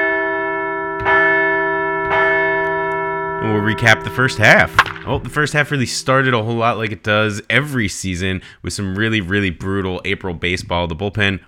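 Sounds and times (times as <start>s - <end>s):
large resonant bell ringing: 0.0s - 7.4s
speech: 3.6s - 11.4s.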